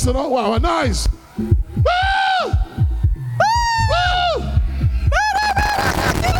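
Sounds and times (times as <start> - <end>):
speech: 0.0 - 2.6
pounding song with heavy bass: 1.1 - 6.3
woman's high sustained screams: 1.8 - 2.6, 3.4 - 6.3.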